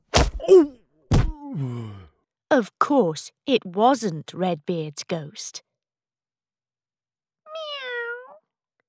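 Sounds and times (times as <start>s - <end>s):
heavy thud of a man falling to the floor: 0.1s - 0.4s, 1.1s - 1.4s
sharp whack of a head hitting something: 0.1s - 0.4s, 1.1s - 1.4s
man groaning in pain: 0.4s - 2.1s
man's long sinking moan: 0.4s - 2.2s
speech: 0.5s - 0.8s, 2.6s - 5.7s
house cat meowing: 7.5s - 8.4s.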